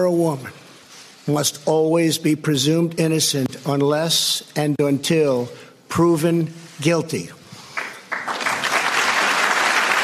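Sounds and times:
speech: 0.0s - 0.6s, 1.3s - 7.4s
President of the United States giving a speech: 0.0s - 7.5s
crowd applauding during a presidential speech: 7.8s - 10.0s.

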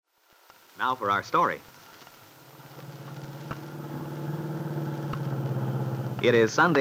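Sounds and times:
speech: 0.8s - 1.7s, 6.2s - 6.7s
car engine humming while driving: 2.0s - 6.6s.

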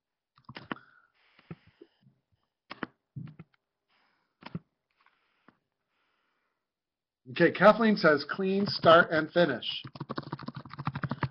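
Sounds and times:
speech: 7.3s - 10.0s
typing on a computer keyboard: 9.8s - 11.3s.

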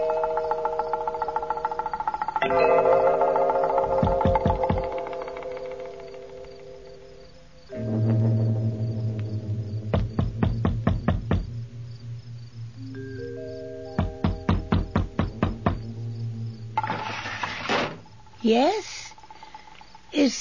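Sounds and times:
low sustained musical drone: 0.0s - 18.5s
speech: 2.4s - 2.9s
knocking on a wooden door: 4.0s - 5.1s, 9.9s - 11.6s, 14.0s - 15.9s.

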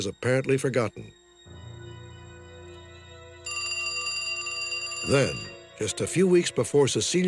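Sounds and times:
speech: 0.0s - 1.2s, 5.1s - 7.2s
telephone ringing with a bright electronic trill: 1.5s - 6.2s.

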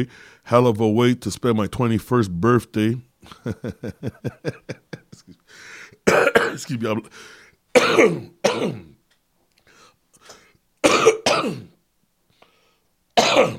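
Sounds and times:
speech: 0.0s - 8.9s, 10.9s - 11.7s
laughter: 3.2s - 5.5s
person coughing in harsh raspy bursts: 6.0s - 6.8s, 7.8s - 9.0s, 10.3s - 11.8s, 13.2s - 13.5s
person clearing throat: 6.1s - 6.8s, 7.8s - 9.0s, 10.8s - 11.8s, 13.2s - 13.5s.

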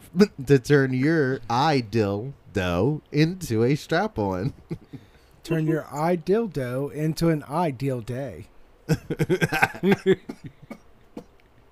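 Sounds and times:
speech: 0.1s - 10.8s
laughter: 4.4s - 5.0s, 8.9s - 10.7s
loud coughs with a laughing voiced quality: 8.9s - 11.3s.

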